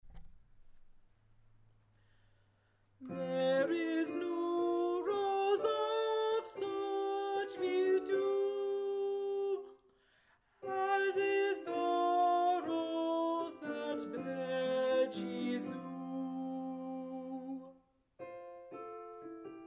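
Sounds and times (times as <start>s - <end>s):
alto voice singing: 3.0s - 9.8s, 10.6s - 17.8s.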